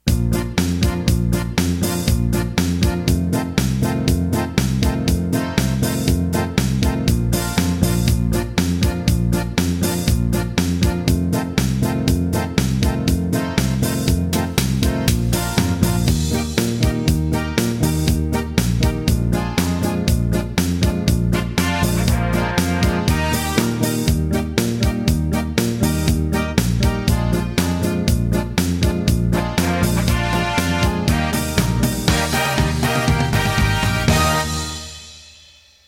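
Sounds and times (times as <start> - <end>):
pop polka music: 0.0 - 35.8.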